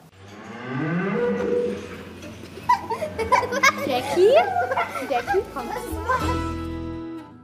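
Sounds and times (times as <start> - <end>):
hand-raised bottle-fed cow mooing on a farm in Erming: 0.2 - 2.3
laughter: 2.5 - 6.7
speech: 4.0 - 6.6.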